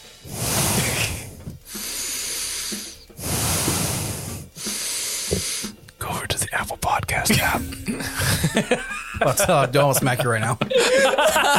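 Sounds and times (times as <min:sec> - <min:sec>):
heavy hissy breaths blown into a microphone: 0:00.0 - 0:05.8
speech: 0:06.7 - 0:11.5
laughter: 0:07.4 - 0:11.5.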